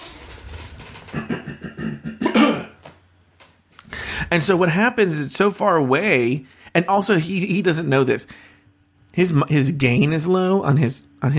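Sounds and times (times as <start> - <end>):
person imitating a cough: 1.1 - 2.8
faint breath: 3.8 - 4.3, 8.3 - 8.8
speech: 4.3 - 8.5, 9.2 - 11.3.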